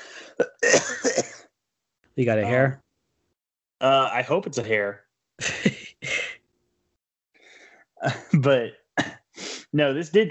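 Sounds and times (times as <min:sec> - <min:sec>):
raspy cough: 0:00.1 - 0:01.4, 0:05.4 - 0:06.3, 0:09.0 - 0:09.2
speech: 0:02.2 - 0:02.8, 0:03.8 - 0:05.8, 0:08.0 - 0:08.8, 0:09.7 - 0:10.3
laughter: 0:05.4 - 0:06.3, 0:08.0 - 0:08.7.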